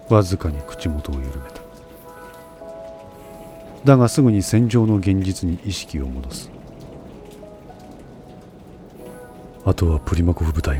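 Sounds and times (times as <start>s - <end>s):
steady rain falling on a battlefield: 0.0s - 10.7s
speech: 0.1s - 1.6s, 3.8s - 6.6s, 9.6s - 10.7s.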